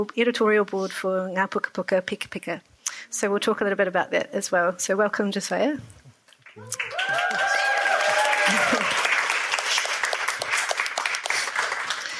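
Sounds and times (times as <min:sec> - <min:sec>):
speech: 0:00.0 - 0:06.0, 0:06.6 - 0:07.4
audience clapping: 0:06.4 - 0:12.1
people cheering and whooping: 0:06.5 - 0:09.3.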